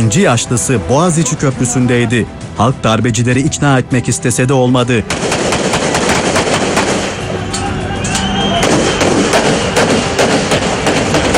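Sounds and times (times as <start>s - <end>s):
speech: 0.0s - 5.5s
dense constant roar of noise: 0.0s - 11.3s
gunfire at night near the Bosphorus Bridge during a coup attempt: 5.1s - 7.3s, 8.6s - 11.3s.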